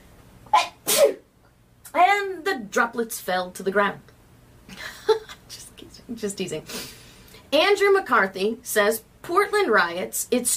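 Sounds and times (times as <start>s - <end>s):
person sneezing: 0.5s - 1.3s
speech: 2.7s - 4.1s, 6.1s - 6.9s, 7.5s - 10.5s.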